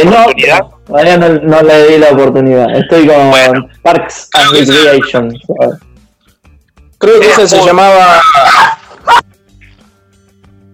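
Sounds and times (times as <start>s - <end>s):
speech: 0.0s - 5.9s, 7.0s - 9.3s
laughter: 2.6s - 4.0s, 7.3s - 9.2s
single sharp dog bark: 8.3s - 9.2s.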